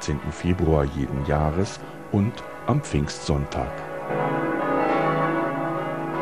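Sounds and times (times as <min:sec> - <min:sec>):
speech: 0:00.1 - 0:04.5
heaviest church bell of 1.7 tonnes swinging and ringing: 0:00.8 - 0:06.2.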